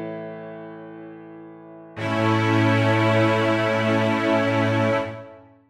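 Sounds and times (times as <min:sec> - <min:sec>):
major chord: 0:02.0 - 0:05.6.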